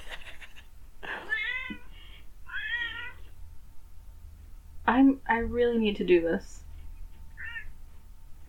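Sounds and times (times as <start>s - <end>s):
cat yowling meows: 1.3s - 1.9s, 2.5s - 3.3s, 7.3s - 7.7s
speech: 5.4s - 6.7s.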